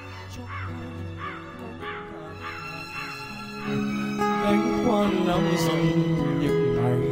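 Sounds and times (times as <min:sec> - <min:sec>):
black crow cawing harshly and mournfully as it flies up: 0:00.0 - 0:04.4
speech: 0:00.4 - 0:00.8, 0:04.5 - 0:07.0.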